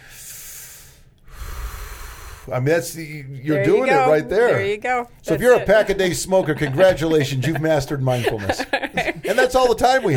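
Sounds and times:
deep breath in: 0.0 - 2.5
speech: 2.4 - 10.1
laughter: 6.3 - 10.1.

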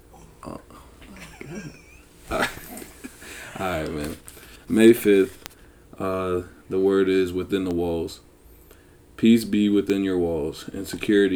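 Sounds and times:
dog making snuffling grunts and whiny yips: 0.0 - 3.5
faint room noise: 0.0 - 11.3
laughter: 0.1 - 5.4
speech: 0.4 - 0.8, 1.5 - 2.4, 3.6 - 5.4, 6.0 - 8.3, 9.2 - 11.3.

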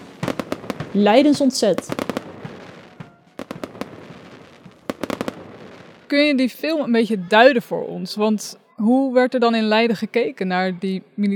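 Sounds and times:
fireworks crackling and banging at the Leiden Relief celebration in Leiden, Netherlands: 0.0 - 7.0
speech: 0.9 - 2.0, 6.1 - 11.3.

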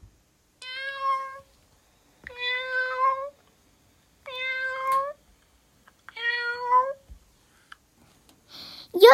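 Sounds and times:
hungry cats meowing: 0.6 - 1.5, 2.3 - 3.4, 4.3 - 5.2, 6.1 - 7.0.

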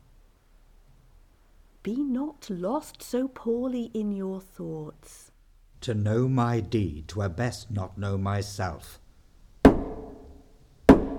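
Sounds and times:
speech: 1.8 - 9.0
heavy knocks on a door: 9.6 - 10.3, 10.9 - 11.1.

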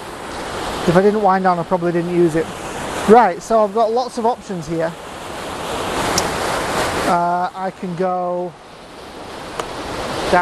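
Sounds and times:
rushing waterfall in Scotland: 0.0 - 10.4
speech: 0.8 - 5.0, 7.1 - 8.6.

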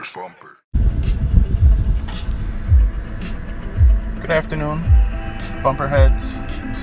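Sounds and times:
low steady rumble inside a car: 0.7 - 6.7
speech: 4.3 - 5.1, 5.6 - 6.7.

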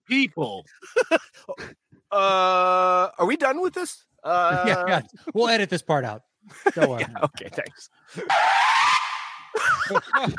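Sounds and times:
speech: 0.1 - 1.3, 2.1 - 9.0, 9.6 - 10.3
laughter: 0.7 - 1.8, 4.3 - 5.1, 6.5 - 8.4, 9.5 - 10.3
tires screeching in a hard-braking skid: 8.3 - 9.6.

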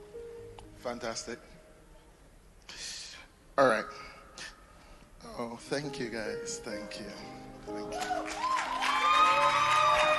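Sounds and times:
speech: 0.8 - 1.6, 3.6 - 4.0, 5.4 - 8.5
crowd clapping: 7.6 - 10.1
crowd whooping and shouting: 7.9 - 10.1.

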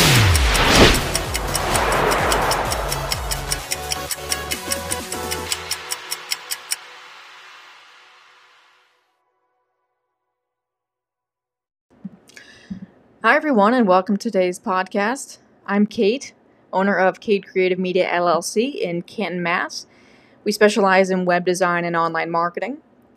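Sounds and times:
loud rushing engine-like swell: 0.0 - 4.9
clock ticking rapidly: 0.0 - 6.9
brief low thump: 0.4 - 3.6
speech: 13.2 - 22.8.

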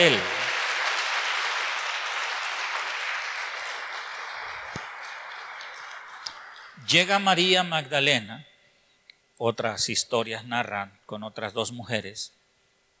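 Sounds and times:
speech: 0.0 - 0.3, 6.9 - 8.5, 9.4 - 12.4
large crowd applauding: 0.0 - 7.4
sharp isolated claps: 0.0 - 7.5.

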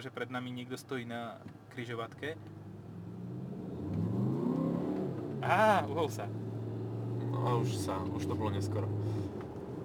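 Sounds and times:
speech: 0.0 - 2.6, 5.4 - 6.5, 7.3 - 9.3
car engine rumbling while accelerating: 2.4 - 9.8.

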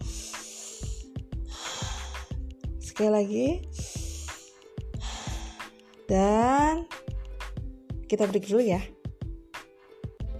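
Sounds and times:
people taking deep breaths before a practicum class: 0.0 - 2.4, 3.7 - 5.8
speech: 3.0 - 4.0, 6.1 - 7.0, 8.1 - 9.0.

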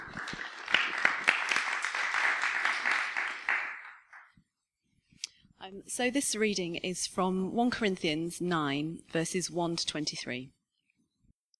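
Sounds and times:
crowd applauding: 0.0 - 4.4
stray claps: 0.0 - 4.4
speech: 5.7 - 10.6.

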